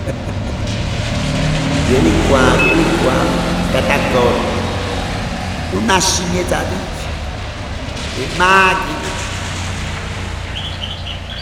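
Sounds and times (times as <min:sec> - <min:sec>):
laughter: 0:00.0 - 0:10.4
steady low rumble of noise: 0:00.0 - 0:11.3
speech: 0:01.9 - 0:04.6, 0:05.7 - 0:07.0, 0:08.2 - 0:09.1
small bird chirping: 0:10.4 - 0:11.3.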